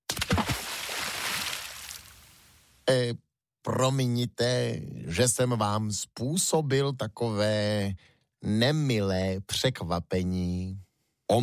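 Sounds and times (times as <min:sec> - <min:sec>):
heavy splash of a tangled ball of plant stalks into the sea: 0:00.1 - 0:02.3
speech: 0:02.9 - 0:11.4.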